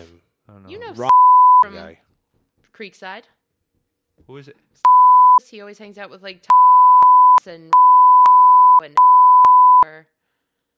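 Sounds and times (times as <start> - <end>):
speech: 0.5 - 2.0, 2.8 - 3.4, 4.2 - 6.6, 7.4 - 7.8, 8.8 - 9.1, 9.8 - 10.2
censor beep bleeping out a name: 1.1 - 1.7, 4.9 - 5.4, 6.5 - 9.9.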